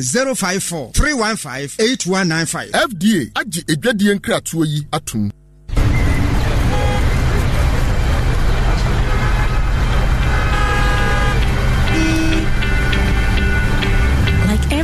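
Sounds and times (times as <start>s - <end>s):
speech: 0.0s - 5.4s
car horns honking: 5.7s - 14.6s
dense loud street traffic rumble: 5.7s - 14.8s.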